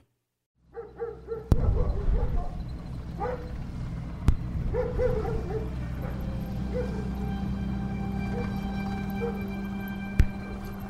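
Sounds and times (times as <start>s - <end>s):
dog barking: 0.7s - 2.6s, 3.2s - 3.5s, 4.7s - 7.3s, 9.2s - 9.5s
steady low rumbling drone: 1.2s - 10.8s.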